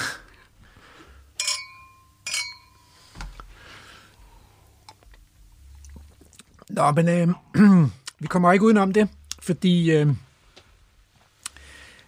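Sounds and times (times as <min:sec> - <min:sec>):
glasses clinking in a toast: 0:01.4 - 0:02.9
speech: 0:06.8 - 0:10.3.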